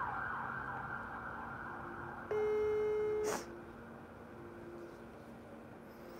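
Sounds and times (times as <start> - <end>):
faint hum: 1.0 - 6.1
telephone ringing tone for a live call to Mexico City: 2.3 - 3.3.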